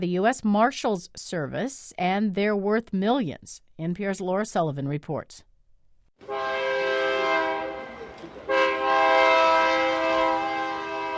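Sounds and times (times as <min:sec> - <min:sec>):
speech: 0:00.0 - 0:05.5
train horn blasts: 0:06.2 - 0:11.1.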